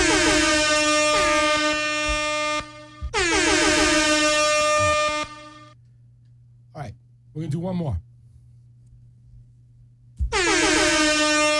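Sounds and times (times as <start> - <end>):
air horn blasts: 0.0 - 5.8, 10.3 - 11.5
speech: 7.4 - 8.1.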